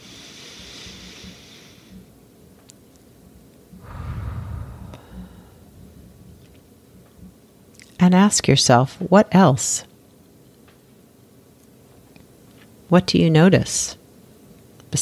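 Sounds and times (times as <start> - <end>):
slow deep breath in: 0.0 - 2.1, 3.8 - 6.2
faint steady hiss: 0.0 - 14.9
speech: 8.0 - 9.9, 12.9 - 14.0.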